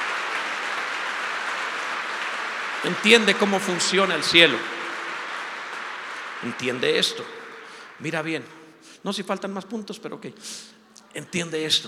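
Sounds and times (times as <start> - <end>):
applause during a sermon: 0.0 - 8.8
speech: 2.8 - 4.7, 6.4 - 7.4, 8.0 - 11.8.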